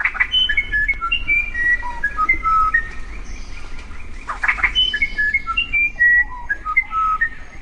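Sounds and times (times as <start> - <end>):
South American musician wren whistled song: 0.0 - 7.6.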